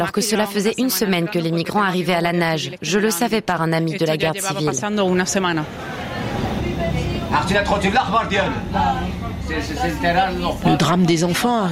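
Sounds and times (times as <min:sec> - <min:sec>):
speech: 0:00.0 - 0:05.9, 0:07.3 - 0:11.7
passengers speaking Arabic inside a moving bus: 0:00.0 - 0:11.7
steady low bus engine rumble and road hum: 0:05.0 - 0:11.2.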